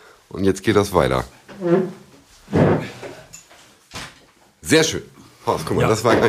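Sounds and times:
speech: 0.3 - 3.0, 4.7 - 6.2
heavy wooden chair clunk being set down in an office: 2.5 - 3.2.

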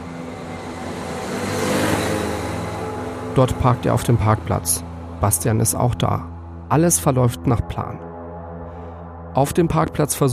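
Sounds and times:
small motor scooter engine revving and pulling away: 0.0 - 3.4
speech: 3.4 - 8.0, 9.4 - 10.3.

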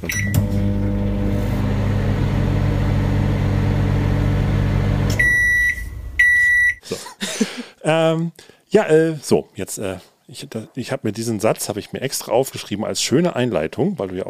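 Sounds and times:
microwave oven humming: 0.0 - 6.4
microwave oven high-pitched beeps: 5.2 - 6.8
speech: 7.9 - 14.2.

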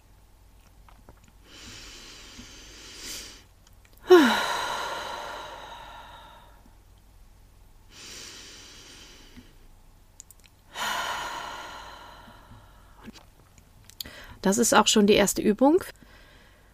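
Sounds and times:
slow deliberate breathing during a relaxation exercise: 1.4 - 6.8, 7.9 - 9.7, 10.7 - 13.2, 16.0 - 16.7
speech: 14.4 - 16.0.

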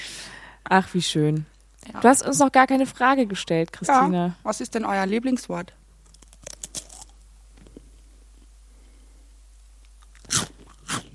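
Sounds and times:
speech: 0.7 - 5.8
person crunching on dry cheese sticks: 6.0 - 8.0, 9.8 - 11.1.

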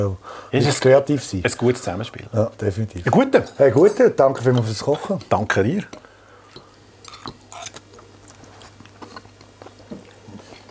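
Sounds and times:
speech: 0.0 - 6.0
guest chewing while eating: 6.5 - 10.7.

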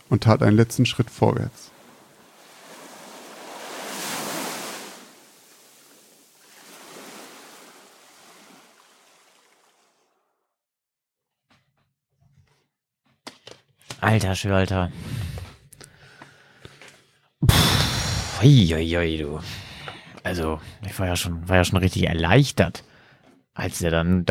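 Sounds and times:
sea waves breaking on shore: 0.0 - 10.2
speech: 0.1 - 1.8, 14.1 - 15.5, 18.4 - 22.9, 23.6 - 24.2.

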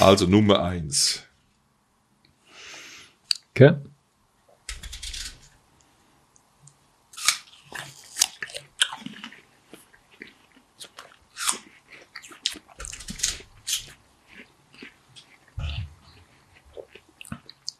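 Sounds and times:
speech: 0.0 - 1.3, 3.6 - 3.9
crunchy bites into an apple during an apple tasting: 7.2 - 15.6
wet chewing of apple: 7.2 - 17.7.

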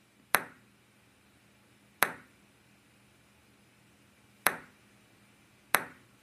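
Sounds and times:
table tennis ball being played: 0.3 - 0.6, 2.0 - 2.3, 4.5 - 4.7, 5.7 - 6.0.

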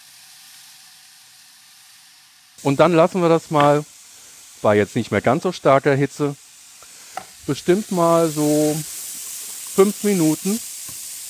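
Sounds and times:
bacon sizzling as it is added to a huge steaming pot: 0.0 - 11.2
speech: 2.6 - 3.9, 4.6 - 6.4, 7.5 - 8.9, 9.8 - 10.7.

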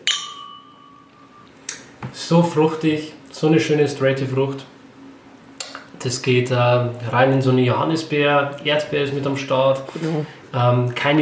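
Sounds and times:
wine glasses clinking in a toast: 0.0 - 1.6
speech: 2.1 - 4.7, 6.0 - 11.2.

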